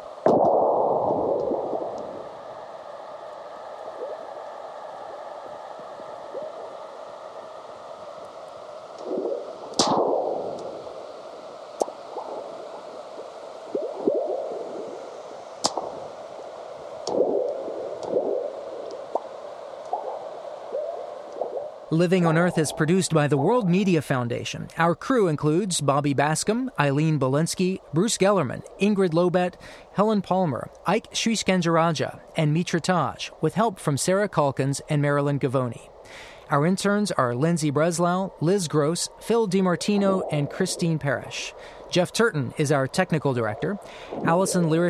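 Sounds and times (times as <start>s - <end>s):
steady hiss: 0.0s - 44.8s
sharp cracks, pops and gurgling bursts in sped-up seismic recordings: 0.2s - 2.4s, 8.2s - 10.8s, 11.8s - 12.9s, 15.6s - 16.2s, 17.0s - 21.7s
sped-up seismic rumblings of the Earth: 0.3s - 8.2s, 9.0s - 29.4s, 36.5s - 44.8s
speech: 22.0s - 44.8s.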